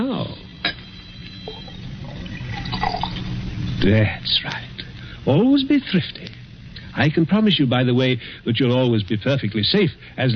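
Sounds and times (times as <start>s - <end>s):
liquid poured into a decanter with splashing gurgles: 1.4s - 3.8s
speech: 3.8s - 6.4s, 7.0s - 10.3s.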